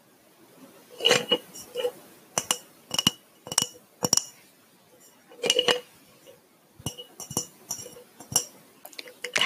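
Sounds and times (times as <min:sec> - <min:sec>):
glass mason jar clinking and tapping: 0:01.0 - 0:04.4, 0:05.4 - 0:05.9, 0:06.8 - 0:09.4.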